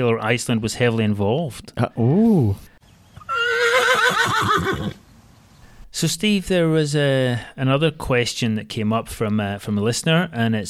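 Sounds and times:
speech: 0.0 - 2.7, 4.1 - 5.0, 6.0 - 10.6
horse whinny: 3.3 - 5.0.

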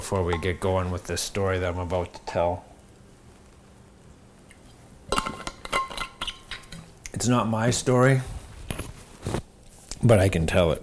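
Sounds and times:
speech: 0.1 - 2.7, 7.2 - 8.4, 10.0 - 10.8
glass clinking: 5.1 - 6.8.

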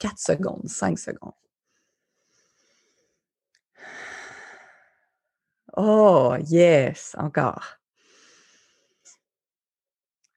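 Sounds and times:
speech: 0.0 - 1.5, 5.8 - 7.8
slow deliberate breathing during a relaxation exercise: 1.6 - 5.3, 7.9 - 9.2.

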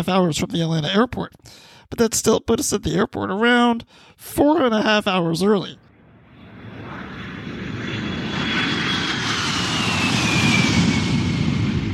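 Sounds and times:
speech: 0.0 - 5.8
thin whining tone sliding downward in pitch: 5.9 - 11.9
aircraft engines roaring at an airport: 6.0 - 11.9.

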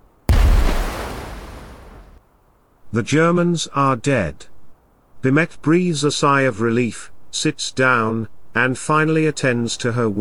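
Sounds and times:
hand grenade explosion: 0.3 - 2.2
speech: 2.9 - 4.5, 5.2 - 10.1.

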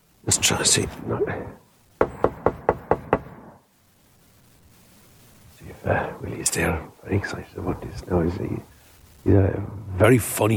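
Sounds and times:
speech: 0.3 - 1.6, 5.8 - 10.5
sharp knocks on a front door: 2.0 - 3.3.

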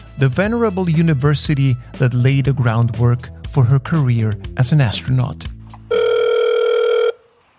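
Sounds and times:
speech: 0.2 - 5.6
buzzy electronic telephone ringing tone: 5.9 - 7.4.

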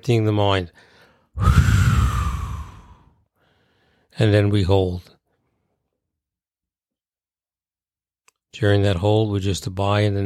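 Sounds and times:
speech: 0.0 - 1.8, 4.2 - 5.2, 8.5 - 10.2
deep exhale during a meditative breathing exercise: 0.9 - 4.0.

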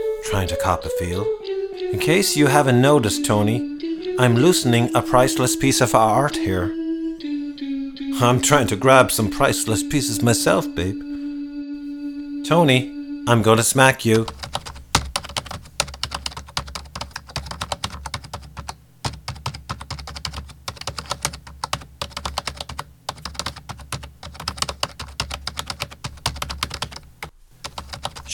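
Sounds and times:
speech: 0.2 - 6.8, 8.2 - 11.1, 12.5 - 14.4
rapid clatter of keys on computer keyboards as people write code: 14.2 - 28.3.

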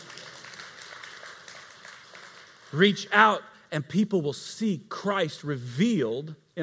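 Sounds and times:
audience clapping: 0.0 - 3.4
speech: 2.7 - 6.6.

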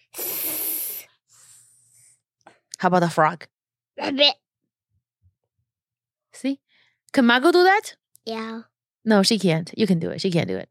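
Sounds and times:
child imitating a snake's hiss: 0.0 - 2.1
speech: 2.8 - 4.4, 6.4 - 10.6.

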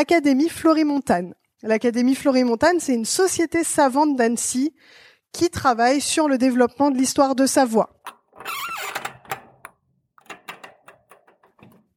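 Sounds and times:
speech: 0.0 - 8.7
door in a château swinging shut with a squeaky creak: 8.0 - 11.9.

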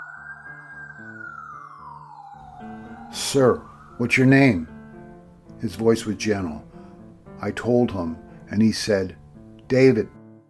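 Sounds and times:
police car siren wailing in a residential neighborhood: 0.0 - 5.4
speech: 2.6 - 4.7, 5.6 - 6.7, 7.4 - 10.2.

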